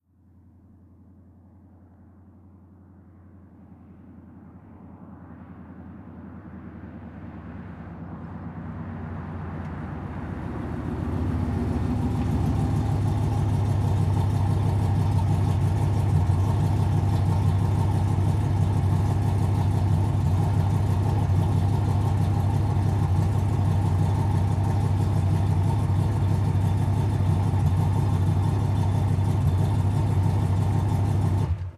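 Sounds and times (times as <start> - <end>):
muscle car idling: 6.5 - 31.7.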